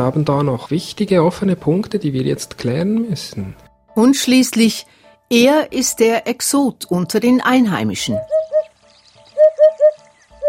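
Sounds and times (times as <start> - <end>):
speech: 0.0 - 8.4
faint higher birdsong: 8.0 - 10.4
hoopoe calling: 8.1 - 10.4.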